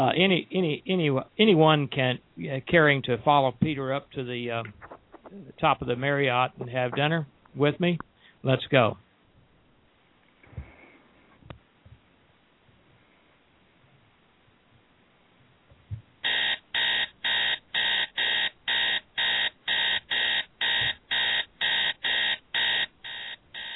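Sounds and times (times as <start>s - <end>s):
speech: 0.0s - 9.0s
alarm clock beeping: 16.2s - 23.7s.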